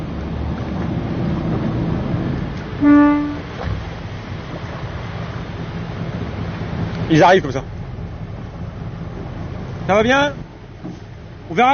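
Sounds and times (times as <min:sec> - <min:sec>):
boat engine out of gear: 0:00.0 - 0:11.7
water noise: 0:00.0 - 0:11.7
boat horn toot signalling divers: 0:02.8 - 0:03.6
speech: 0:07.1 - 0:07.8, 0:09.9 - 0:11.7.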